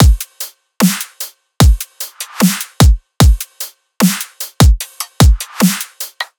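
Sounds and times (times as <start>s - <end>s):
drum loop at 150 BPM: 0.0s - 6.3s.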